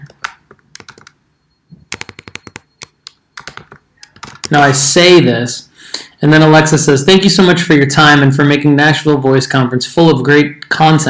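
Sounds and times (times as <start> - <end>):
typing on a computer keyboard: 0.0 - 1.2, 1.9 - 4.6
speech: 4.5 - 11.0.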